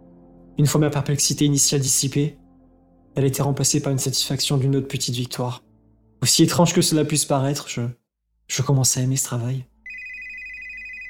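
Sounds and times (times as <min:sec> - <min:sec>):
speech: 0:00.6 - 0:02.4, 0:03.2 - 0:09.7
landline telephone ringing: 0:09.8 - 0:11.0.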